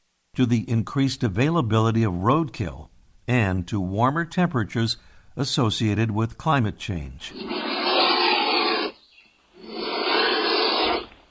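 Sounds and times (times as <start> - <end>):
speech: 0.4 - 7.5
black vulture hissing: 7.3 - 9.0, 9.6 - 11.2.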